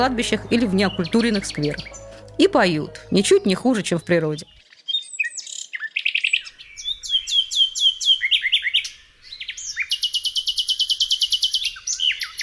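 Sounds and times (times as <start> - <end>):
speech: 0.0 - 4.6
nightingale singing: 0.0 - 12.4.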